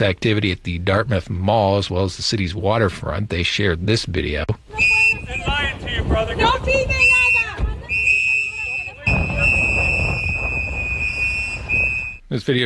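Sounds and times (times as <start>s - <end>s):
speech: 0.0s - 7.2s, 12.3s - 12.6s
voices shouting and chattering: 4.5s - 12.2s
wind buffeting the microphone: 4.6s - 12.2s
shrill whistles blown by activists outdoors: 4.7s - 5.8s, 6.7s - 12.3s.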